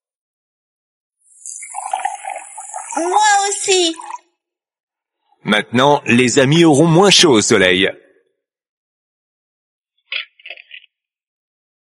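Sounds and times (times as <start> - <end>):
water flowing from a tap fitted onto a pipe by a robot: 1.3 - 4.3
speech: 3.0 - 4.1, 5.5 - 8.0.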